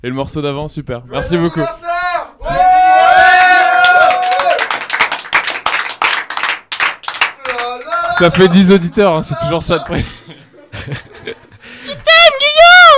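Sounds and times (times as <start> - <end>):
speech: 0.0 - 1.9, 8.2 - 11.4
small group of people shouting and cheering after singing a song: 1.1 - 4.9, 7.3 - 10.1, 11.8 - 12.9
people clapping rapidly: 3.2 - 10.0
laughter: 7.6 - 12.2.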